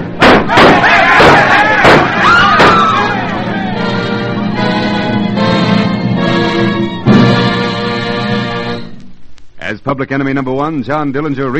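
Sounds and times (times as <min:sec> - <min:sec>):
sustained orchestral music: 0:00.0 - 0:09.1
gunshots on a city street: 0:00.1 - 0:03.2
speech: 0:10.0 - 0:11.5.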